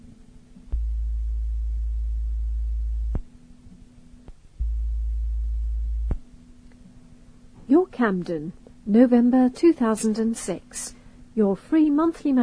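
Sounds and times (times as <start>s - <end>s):
low electronic tones marking audio magazine sections: 0.0s - 8.2s
faint hum: 0.0s - 12.4s
speech: 7.7s - 12.4s.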